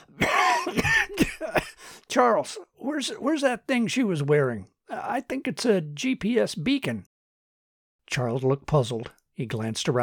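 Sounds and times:
man coughing phlegmy wet coughs: 0:00.0 - 0:01.9
speech: 0:01.5 - 0:07.1, 0:08.1 - 0:10.0.

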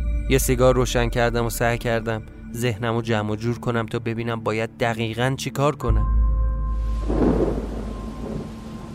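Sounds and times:
speech: 0:00.3 - 0:06.2
deep thunder rumbling in a park: 0:06.7 - 0:08.9
steady rain in a park: 0:06.8 - 0:08.9.

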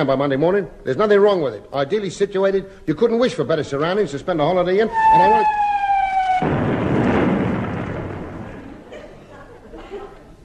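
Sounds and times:
speech: 0:00.0 - 0:05.8
long-range artillery shell exploding during firing practice near a camp by the sea: 0:04.9 - 0:09.0
laughter: 0:08.6 - 0:10.4.

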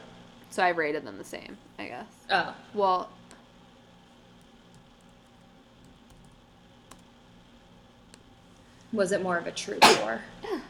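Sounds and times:
speech: 0:00.5 - 0:03.2, 0:08.9 - 0:10.6
person sneezing: 0:09.8 - 0:10.2.

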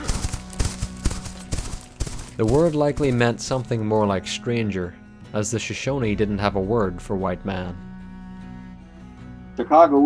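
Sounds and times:
horse hooves clip-clopping as a Shoshone rider rides off: 0:00.0 - 0:03.6
speech: 0:02.4 - 0:07.9, 0:09.6 - 0:10.0.

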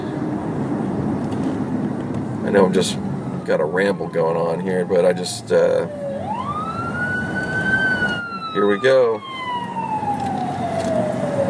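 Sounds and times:
constant rumble of road traffic: 0:00.0 - 0:11.4
speech: 0:02.5 - 0:06.0, 0:08.6 - 0:09.3
ambulance siren wailing: 0:02.5 - 0:11.4.

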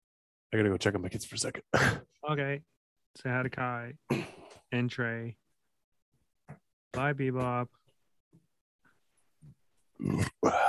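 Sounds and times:
speech: 0:00.5 - 0:05.4, 0:06.5 - 0:07.8, 0:10.0 - 0:10.6
loud drawn-out belch and burp: 0:10.0 - 0:10.6
short low grunt: 0:10.0 - 0:10.6.

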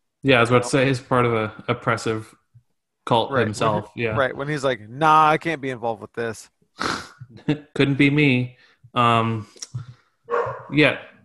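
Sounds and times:
speech: 0:00.2 - 0:02.4, 0:03.1 - 0:09.9, 0:10.7 - 0:11.1
dogs barking at a door: 0:10.3 - 0:10.8.

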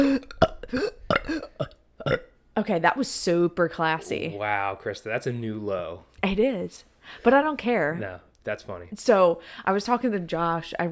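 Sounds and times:
speech: 0:00.0 - 0:01.4, 0:02.7 - 0:10.9
forced croaky burps: 0:00.0 - 0:02.3.

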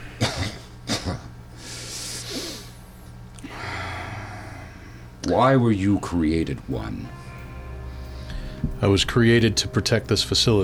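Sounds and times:
low steady hum: 0:00.0 - 0:10.6
person coughing: 0:00.1 - 0:01.3
hissing raspy breaths: 0:01.5 - 0:05.2, 0:07.9 - 0:08.7
speech: 0:05.3 - 0:07.2, 0:08.8 - 0:10.6.

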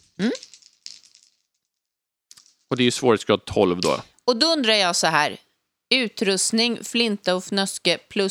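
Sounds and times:
speech: 0:00.2 - 0:00.4, 0:02.7 - 0:08.2
special die and two ordinary dice rolled for a travel skill roll: 0:00.2 - 0:01.6, 0:02.3 - 0:02.7.

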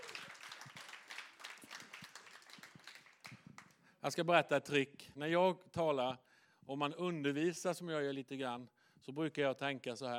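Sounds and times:
audience applauding: 0:00.0 - 0:03.8
speech: 0:04.0 - 0:10.1.

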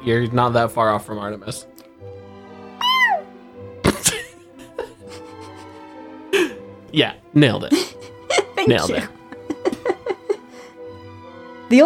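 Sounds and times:
speech: 0:00.0 - 0:01.8, 0:06.9 - 0:08.0, 0:08.7 - 0:09.2
person's voice imitating a cat meow: 0:02.8 - 0:03.3
laughter: 0:03.8 - 0:06.6, 0:07.7 - 0:10.7.

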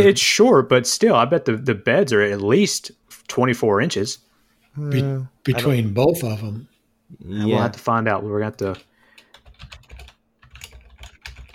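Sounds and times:
speech: 0:00.0 - 0:08.9
typing on a computer keyboard: 0:08.7 - 0:11.5.

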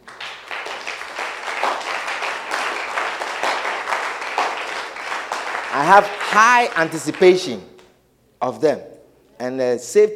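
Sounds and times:
audience applauding for children: 0:00.0 - 0:07.6
speech: 0:05.8 - 0:07.7, 0:08.4 - 0:10.1.

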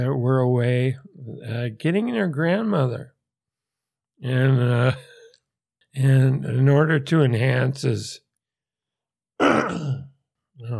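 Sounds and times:
speech: 0:00.0 - 0:03.2, 0:04.2 - 0:05.1, 0:06.0 - 0:08.2, 0:09.4 - 0:10.7
rough, gravelly throat clearing: 0:09.4 - 0:10.7.

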